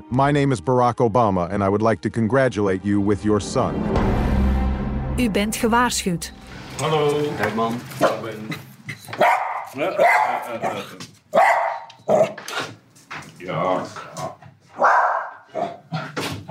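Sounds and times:
speech: 0.1s - 4.2s, 5.2s - 11.4s, 12.1s - 12.7s, 13.4s - 15.0s
dog barking at someone at the door: 9.1s - 12.4s, 14.7s - 16.4s.

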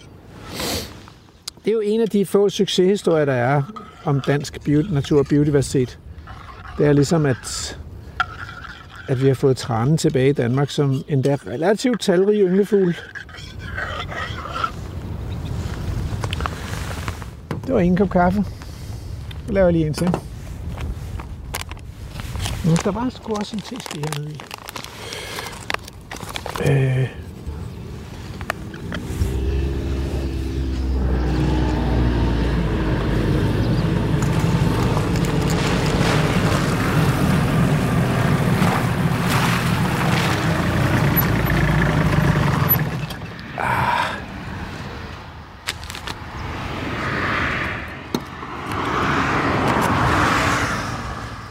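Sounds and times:
faint outdoor sounds: 0.0s - 51.4s
vehicles passing on a busy country road: 0.0s - 51.4s
speech: 1.6s - 6.0s, 6.8s - 7.8s, 9.1s - 13.6s, 17.7s - 18.6s, 19.5s - 20.3s, 22.6s - 24.6s, 26.6s - 27.2s.

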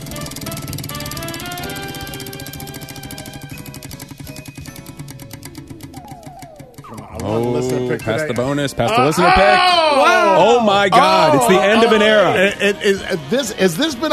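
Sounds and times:
prize wheel spinning with ratcheting clicks: 0.0s - 9.1s
tonal music bed: 0.0s - 14.1s
laughter: 6.0s - 14.1s
speech: 7.2s - 14.1s.

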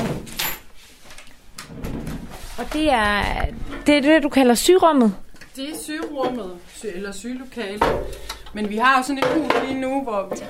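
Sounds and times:
door scraping slide: 1.6s - 2.8s
speech: 2.6s - 10.4s.

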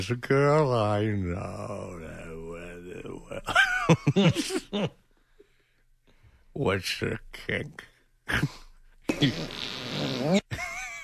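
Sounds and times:
speech: 0.0s - 2.2s, 3.4s - 5.0s, 6.6s - 8.6s, 9.2s - 10.6s
laughter: 3.4s - 5.0s, 10.5s - 11.0s
fart noise: 9.1s - 10.5s.

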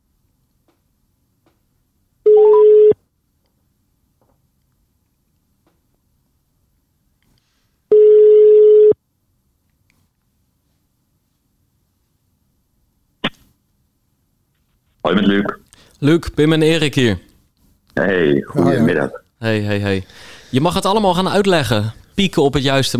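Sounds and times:
telephone ringback tones on an outgoing call: 2.3s - 3.0s, 7.9s - 9.0s
speech: 15.1s - 17.3s, 18.0s - 22.9s.

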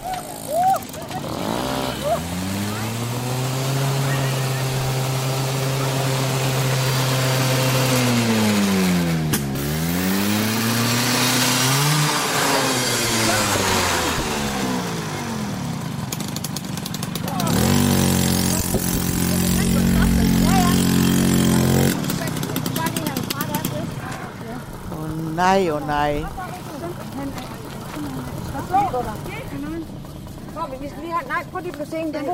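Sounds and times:
moped engine revving at full throttle after rider falls over: 0.0s - 31.2s
speech: 25.4s - 26.4s, 31.4s - 32.3s.

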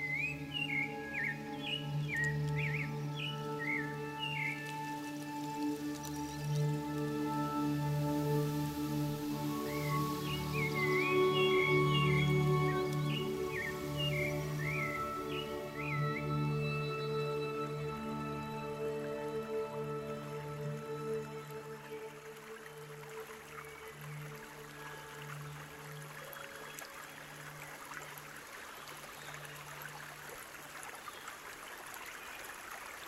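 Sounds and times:
rufous-bellied thrush singing: 0.0s - 25.7s.

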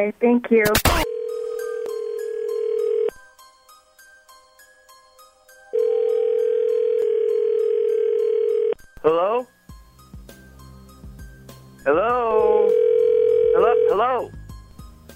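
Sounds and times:
speech: 0.0s - 1.0s
phone ringback tones in the earpiece during outgoing call: 1.0s - 3.2s, 5.8s - 8.8s, 12.3s - 14.3s.

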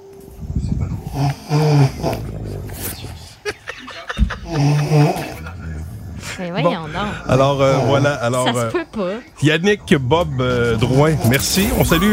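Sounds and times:
two people snoring loudly at once: 0.4s - 12.1s
sharp snorts: 1.0s - 3.4s, 4.4s - 6.4s
speech: 1.2s - 1.6s, 7.3s - 12.1s
laughter: 2.2s - 8.8s.

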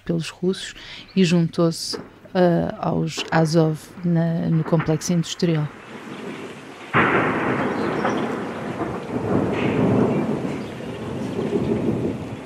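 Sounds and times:
speech: 0.1s - 5.9s
long loud rolling rumble of explosions at a steel plant: 1.8s - 12.4s
heavy blast at a steel plant: 4.6s - 12.2s.

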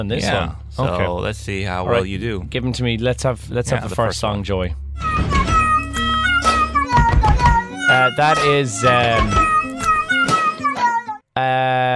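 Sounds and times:
speech: 0.0s - 5.4s, 8.0s - 9.5s, 11.4s - 11.9s
cat meows edited and pitched into a song melody: 5.0s - 11.2s.

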